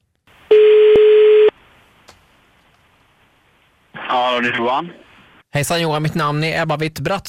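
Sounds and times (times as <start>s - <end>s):
person answering phone: 0.5s - 1.5s
telephone ringback tone on an outgoing call: 0.5s - 1.5s
speech: 4.4s - 7.2s.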